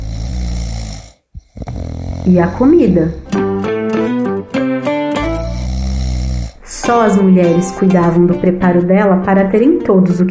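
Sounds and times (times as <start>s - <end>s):
short snuffling breaths: 0.0s - 3.6s, 5.2s - 6.8s
person snoring with a rough rattling buzz: 0.0s - 4.3s, 5.2s - 6.8s
speech: 2.3s - 3.4s, 6.9s - 10.2s.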